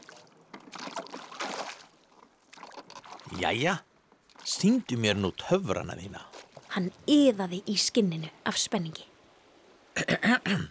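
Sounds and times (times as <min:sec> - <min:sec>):
oars splashing and swishing through water as a boat is rowed out to sea: 0:00.0 - 0:07.9
speech: 0:03.3 - 0:03.9, 0:04.5 - 0:09.1, 0:10.0 - 0:10.6.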